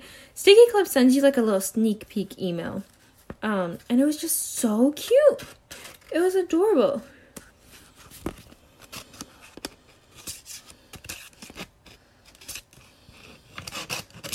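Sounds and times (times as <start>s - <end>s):
speech: 0.4s - 7.1s
vintage paper envelope being opened, paper rustling and tearing: 10.1s - 14.3s.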